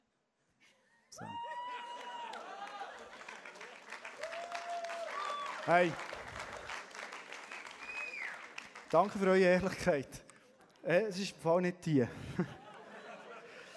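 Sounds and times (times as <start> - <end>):
speech: 1.1 - 1.4, 5.6 - 6.1, 8.9 - 10.2, 10.8 - 12.6
cheers: 1.1 - 8.6
crowd clapping: 1.2 - 10.9
laughter: 1.5 - 3.9, 12.1 - 13.7
whistles: 7.4 - 8.5.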